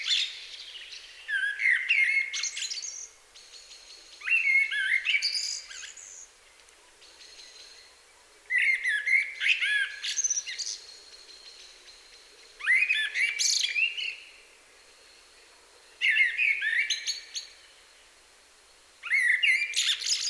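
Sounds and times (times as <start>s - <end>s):
common blackbird Turdus merula song with fluting phrases and scratchy twittering: 0.0s - 18.1s, 19.0s - 20.2s.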